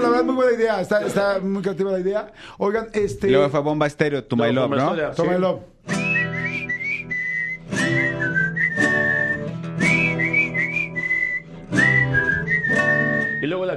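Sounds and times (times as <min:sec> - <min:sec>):
speech: 0:00.0 - 0:06.0
person whistling a song: 0:05.9 - 0:13.7.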